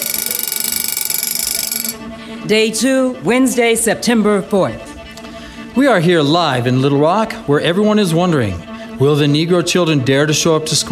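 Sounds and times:
mechanical alarm clock bell ringing: 0.0 - 2.0
speech: 2.4 - 4.9, 5.8 - 10.8.

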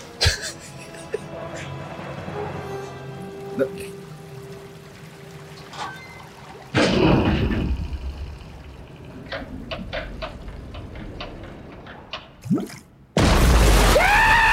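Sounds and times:
sharp water splashes: 0.0 - 10.2, 12.4 - 14.5
water draining with trickling gurgling flow: 1.4 - 10.6, 12.4 - 13.0.

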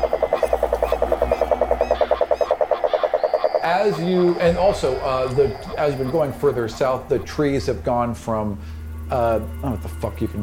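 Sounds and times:
frogs croaking in a dense pulsing chorus: 0.0 - 10.4
speech: 3.7 - 10.4.

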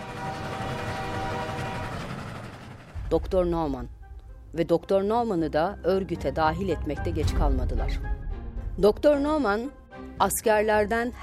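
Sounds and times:
drawn-out train horn: 0.0 - 3.0
train rumbling along tracks at a railway junction in the Afula region: 0.0 - 4.0
speech: 3.1 - 8.2, 8.8 - 11.2.

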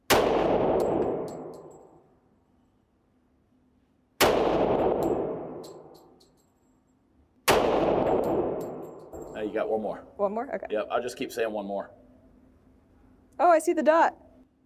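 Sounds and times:
.45 pistol shots fired at a target: 0.0 - 1.9, 4.2 - 6.2, 7.4 - 9.4
speech: 9.4 - 12.0, 13.4 - 14.2.

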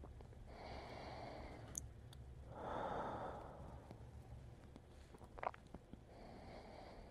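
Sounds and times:
slow deliberate breathing: 0.5 - 1.8, 2.5 - 4.3, 6.1 - 7.0.

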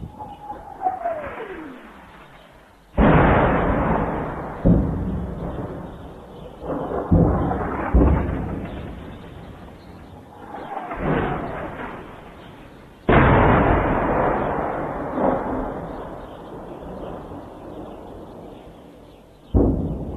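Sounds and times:
descending whistle of incoming artillery shell: 0.0 - 2.6, 10.2 - 12.6
artillery shells exploding during bombardment of the Baba Amr district of Homs, Syria: 0.0 - 18.6, 19.5 - 20.1.

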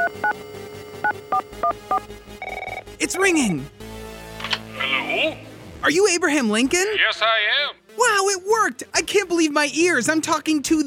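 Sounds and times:
dual-pitched phone keypad beeps while dialling: 0.0 - 2.8
speech: 3.0 - 3.8, 5.2 - 10.8.

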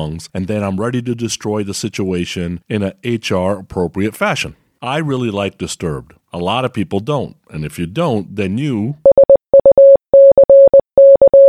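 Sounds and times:
speech: 0.0 - 9.0
Morse code beeps from a mid-pitched electronic tone: 9.0 - 11.4.

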